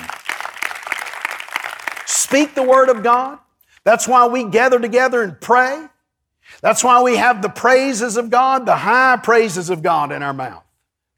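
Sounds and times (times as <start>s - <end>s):
audience clapping hands: 0.0s - 3.4s
speech: 2.3s - 5.9s, 6.5s - 10.6s.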